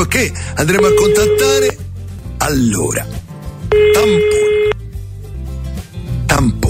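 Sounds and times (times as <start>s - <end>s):
speech: 0.1s - 1.8s, 2.4s - 4.8s, 6.3s - 6.6s
telephone call tone beep: 0.8s - 1.7s, 3.7s - 4.8s.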